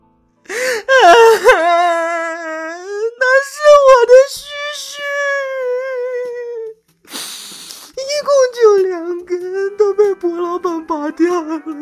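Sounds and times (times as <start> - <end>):
person wailing and crying with anguish: 0.5 - 11.8.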